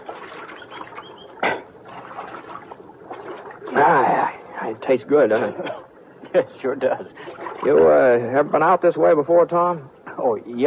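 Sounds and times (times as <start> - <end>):
sharp splash from scooping creek water for a drink: 0.0 - 4.2
water of a creek babbling: 0.0 - 9.2
speech: 4.7 - 10.6.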